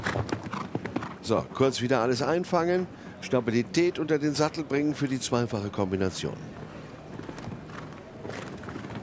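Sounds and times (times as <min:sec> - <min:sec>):
show jumping horse hoofbeats cantering toward a water jump: 0:00.0 - 0:01.2, 0:07.1 - 0:09.0
noise: 0:00.0 - 0:09.0
speech: 0:01.2 - 0:06.6.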